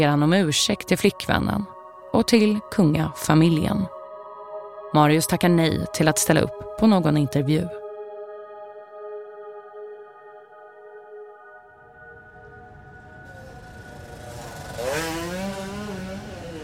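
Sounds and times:
speech: 0.0s - 4.0s, 4.9s - 7.8s
motorcycle ridden on a motorway in central Oslo: 11.8s - 16.6s
road noise: 12.2s - 16.6s.

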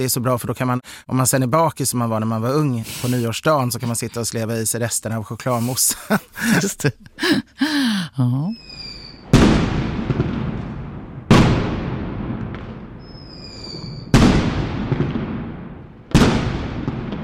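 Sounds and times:
speech: 0.0s - 8.6s
laughter: 3.1s - 4.4s, 5.5s - 8.0s
fireworks whistling: 8.6s - 10.2s, 13.0s - 14.5s
fireworks exploding: 8.7s - 17.2s.

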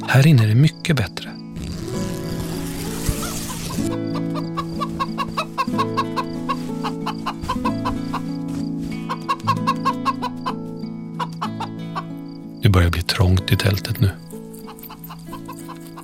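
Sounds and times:
speech: 0.1s - 1.4s, 13.0s - 14.2s
hen scratching with a rustle: 1.6s - 3.9s, 4.7s - 9.1s
hen clucking outside: 3.2s - 12.2s.

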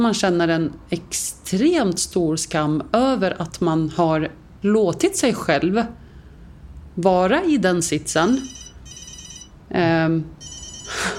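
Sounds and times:
speech: 0.0s - 6.0s, 7.0s - 8.6s, 9.7s - 11.1s
telephone ringing: 8.2s - 9.6s, 10.4s - 11.1s.

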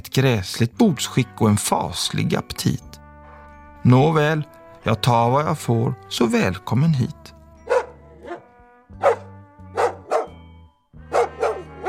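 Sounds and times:
speech: 0.2s - 3.0s, 3.8s - 7.4s
dog barking: 7.6s - 10.4s, 11.1s - 11.8s.

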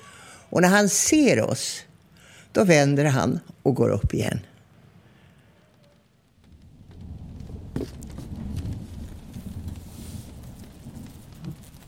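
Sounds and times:
steady rain pattering heard from indoors: 0.2s - 11.8s
speech: 0.5s - 1.9s, 2.5s - 4.5s
louder rain taps: 5.6s - 11.8s.

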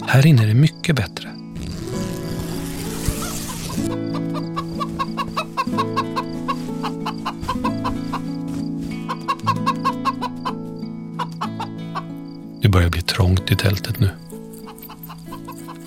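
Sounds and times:
tuneful musical backing: 0.0s - 15.8s
speech: 0.1s - 1.4s, 12.8s - 14.2s
scratchy rustling: 1.6s - 3.9s, 4.6s - 9.2s
hen clucking: 3.2s - 12.2s, 14.6s - 15.8s.

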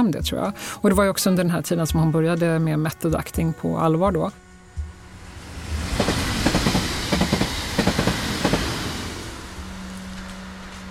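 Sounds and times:
speech: 0.0s - 4.4s
subway train rumbling along the rails, heard from inside the car: 4.4s - 10.8s.

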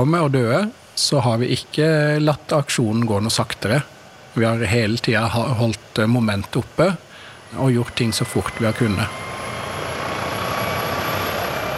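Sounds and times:
speech: 0.0s - 9.3s
helicopter rotor and engine roar climbing on a mountain rescue flight: 3.3s - 11.7s.

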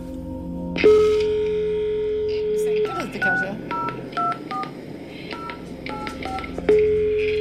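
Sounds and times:
faint cassette tape hiss: 0.0s - 7.3s
steady telephone ringing or dial tone: 0.8s - 7.3s
telephone keypad tones from a 1990s cassette tape recording: 2.8s - 7.3s.

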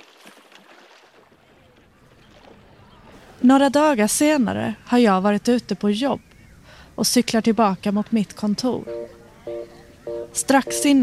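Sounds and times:
water lapping and splashing against a small rowboat hull: 0.0s - 3.4s
wind: 0.0s - 11.0s
speech: 3.4s - 6.3s, 7.0s - 9.2s, 10.4s - 11.0s.

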